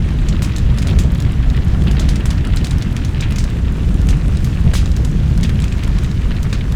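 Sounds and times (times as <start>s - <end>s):
fire burning: 0.0s - 6.7s.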